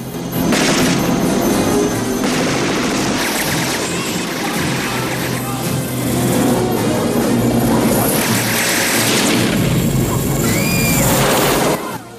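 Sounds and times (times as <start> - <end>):
constant heavy engine roar: 0.0 - 12.1
booms and crashes: 0.2 - 6.4, 7.8 - 11.8
helicopter machine gun fire exchange: 0.3 - 6.5, 8.0 - 10.4.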